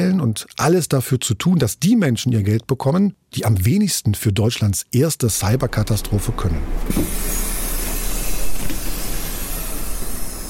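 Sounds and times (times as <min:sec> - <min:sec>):
speech: 0:00.2 - 0:07.6
bus rumbling past a bus stop outside the Anhalt-Bitterfeld district administration in Germany: 0:05.4 - 0:09.5.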